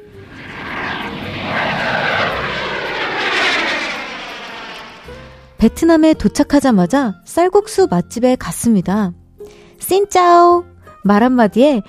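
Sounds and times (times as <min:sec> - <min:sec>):
airplane engine roar: 0:00.0 - 0:05.6
speech: 0:05.6 - 0:11.8.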